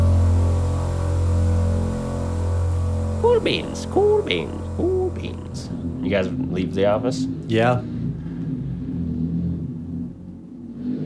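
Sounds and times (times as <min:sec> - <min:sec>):
motorcycle engine idling as the bike pulls up: 0:00.0 - 0:10.7
speech: 0:03.4 - 0:07.9.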